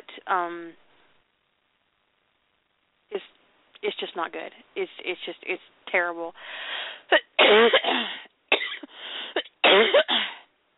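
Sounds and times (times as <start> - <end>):
speech: 0.3 - 0.8, 3.2 - 8.2
harsh wet raspy coughing: 7.2 - 10.4.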